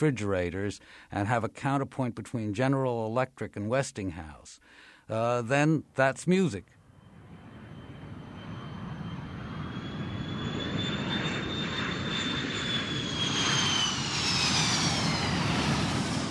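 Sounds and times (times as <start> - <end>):
speech: 0.0 - 6.8
airplane passing overhead with broad engine roar: 6.8 - 16.2
high whining tone of an airplane: 6.8 - 16.2.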